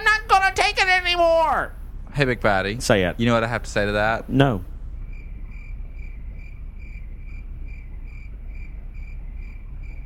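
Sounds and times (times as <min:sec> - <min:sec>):
low rumbling background: 0:00.0 - 0:10.0
speech: 0:01.1 - 0:04.7
crickets chirping: 0:04.9 - 0:10.0.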